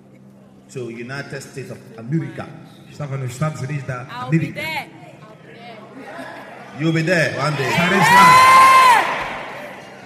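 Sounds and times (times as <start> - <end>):
speech: 0.7 - 5.0, 6.2 - 8.8
audience shouting and cheering on a hot Sunday afternoon: 7.3 - 10.0.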